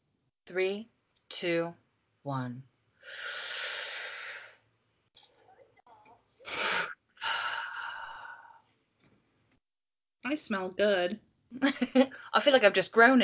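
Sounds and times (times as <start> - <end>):
speech: 0.5 - 3.3, 10.3 - 13.2
deep breath in: 3.0 - 4.6, 6.4 - 8.7.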